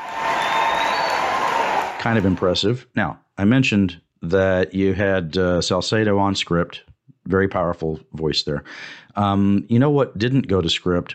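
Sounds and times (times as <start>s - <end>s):
activists in legislative gallery clapping and cheering: 0.0s - 2.5s
speech: 2.0s - 11.1s.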